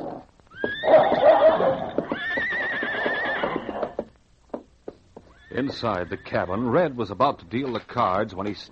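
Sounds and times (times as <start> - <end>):
horses neighing and whinnying in a shed: 0.0 - 4.1, 5.3 - 6.8
speech: 5.6 - 8.6.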